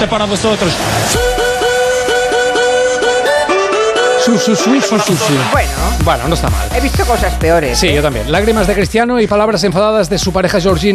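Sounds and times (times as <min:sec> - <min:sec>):
speech: 0:00.0 - 0:01.6, 0:04.3 - 0:10.9
loud upbeat festive electronic track remix: 0:00.4 - 0:10.9
sustained synth chords: 0:00.9 - 0:08.9.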